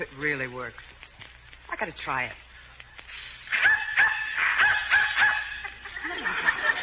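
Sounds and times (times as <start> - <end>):
speech: 0.0 - 1.0, 1.8 - 2.5
dog barking in response to a dog whistle: 3.5 - 5.7
laughter: 5.5 - 6.8.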